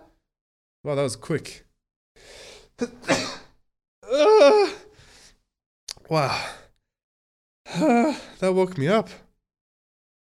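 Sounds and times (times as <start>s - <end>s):
speech: 0.8s - 3.4s, 6.1s - 6.6s, 7.8s - 9.2s
loud sneezes: 3.0s - 3.5s.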